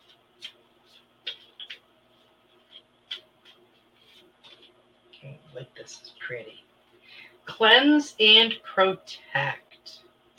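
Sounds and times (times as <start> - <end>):
deck of cards being shuffled and a card drawn: 0.0 - 4.8
speech: 5.6 - 6.7, 7.5 - 9.6.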